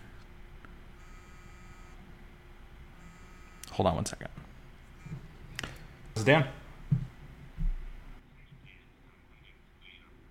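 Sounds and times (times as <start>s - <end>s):
work phone ringing with an incoming call: 1.0s - 2.0s, 3.0s - 3.7s
speech: 3.8s - 4.5s, 6.2s - 6.6s.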